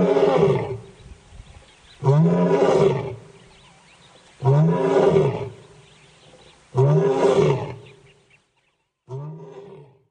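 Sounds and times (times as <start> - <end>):
lion roaring: 2.0 - 3.2, 4.4 - 5.6, 6.4 - 7.9, 9.1 - 10.0.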